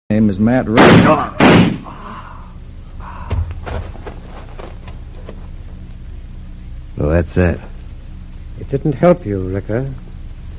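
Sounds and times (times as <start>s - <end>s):
speech: 0.1s - 2.0s, 7.1s - 7.7s, 8.6s - 10.1s
gunshot piercing a car's gas tank: 0.8s - 1.9s.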